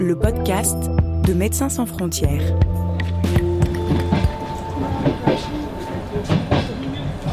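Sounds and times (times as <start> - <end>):
speech: 0.1 - 3.4
medical evacuation train clattering on rails: 3.3 - 7.3.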